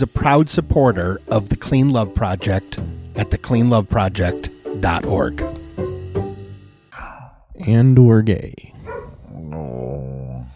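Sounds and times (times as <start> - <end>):
speech: 0.0 - 5.5, 7.6 - 8.7
dog barking with a drawn-out whining vocalization: 8.8 - 9.2.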